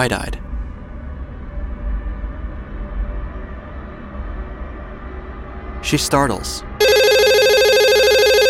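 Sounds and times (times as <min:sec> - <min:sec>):
speech: 0:00.0 - 0:00.4, 0:05.9 - 0:06.7
hotel room telephone ringing with an electronic trill: 0:06.8 - 0:08.4.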